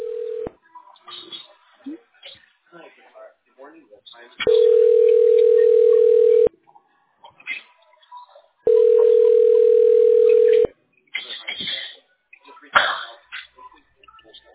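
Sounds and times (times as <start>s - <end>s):
telephone ringback tone: 0.0s - 0.5s, 4.5s - 6.5s, 8.7s - 10.7s
voices: 0.0s - 14.5s.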